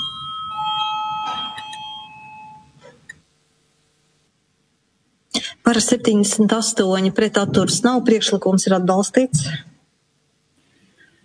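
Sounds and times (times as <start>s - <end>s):
electric voting bell ringing in a parliament chamber: 0.0s - 2.8s
speech: 5.7s - 9.7s.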